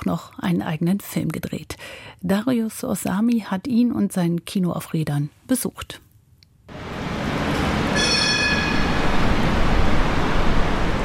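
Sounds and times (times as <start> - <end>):
speech: 0.1 - 6.0
subway train rumbling at a metro station in the rain: 6.7 - 11.0.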